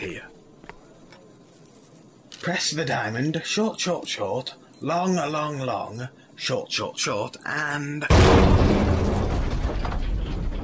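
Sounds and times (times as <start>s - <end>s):
speech: 0.0s - 0.4s, 2.4s - 8.8s
explosion with dense rumbling roar: 8.1s - 10.6s.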